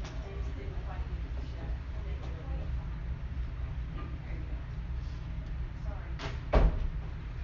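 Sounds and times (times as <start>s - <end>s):
faint sounds: 0.0s - 7.4s
steady low room rumble: 0.0s - 7.4s
door swinging shut with a solid thud: 6.2s - 7.0s.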